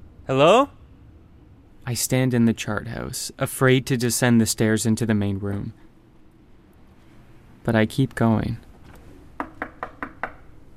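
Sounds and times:
speech: 0.3 - 0.8, 1.9 - 5.9, 7.6 - 8.7
firm knocking on a door: 9.4 - 10.5.

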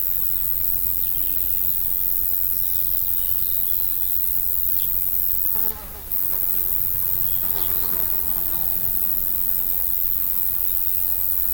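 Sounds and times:
steady high hiss: 0.4 - 11.5
flies buzzing around a field gate: 1.0 - 11.5
bees buzzing around a field gate beside long-grass field margins: 4.8 - 11.5.

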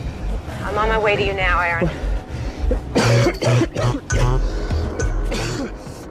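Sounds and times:
speech: 0.7 - 2.1, 2.7 - 4.6
man coughing hard: 2.6 - 6.0
man clearing throat roughly: 2.7 - 5.9.

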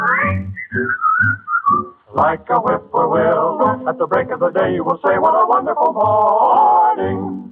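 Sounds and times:
person whistling a bright sliding melody: 0.0 - 2.0
speech: 0.2 - 1.0, 2.2 - 7.4.

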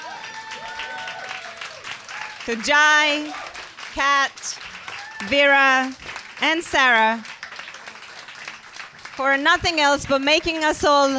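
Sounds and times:
people whooping: 0.0 - 2.5, 4.8 - 5.4
room full of people applauding: 0.0 - 11.1
speech: 2.4 - 7.3, 9.2 - 11.1.

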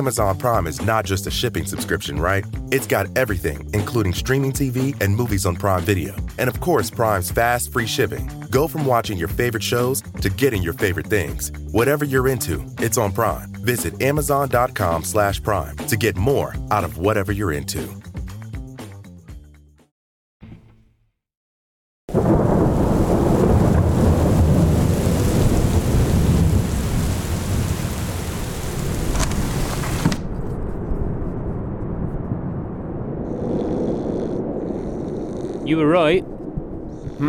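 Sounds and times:
speech: 0.0 - 18.0, 35.7 - 36.3
pouring rain in a heavy thunderstorm: 22.1 - 30.3
rumbling thunder in a heavy thunderstorm: 22.1 - 37.2.

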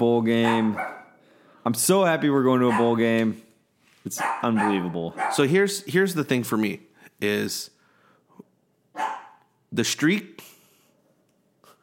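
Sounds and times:
speech: 0.0 - 1.0, 1.6 - 3.4, 4.0 - 7.8, 8.4 - 10.5
female pet dog barking: 0.3 - 1.2, 2.6 - 3.1, 4.1 - 5.6, 9.0 - 9.5.

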